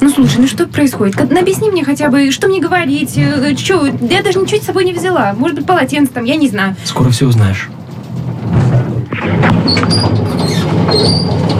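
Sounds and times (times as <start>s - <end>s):
elevator doors opening with a mechanical rumble: 0.0s - 11.5s
speech: 0.1s - 7.8s, 9.7s - 10.4s
faint high squeaks: 9.3s - 11.5s.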